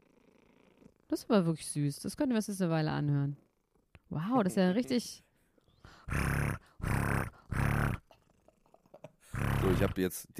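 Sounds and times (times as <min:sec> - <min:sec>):
cat purring against the microphone: 0:00.0 - 0:01.3, 0:03.2 - 0:03.9, 0:05.8 - 0:10.1
speech: 0:01.1 - 0:03.4, 0:04.1 - 0:05.2, 0:05.8 - 0:06.4, 0:09.8 - 0:10.3.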